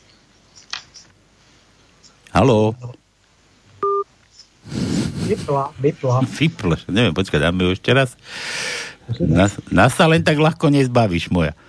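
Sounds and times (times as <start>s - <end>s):
speech: 2.3s - 3.0s, 5.3s - 11.6s
telephone touch-tone keypress beep: 3.8s - 4.0s.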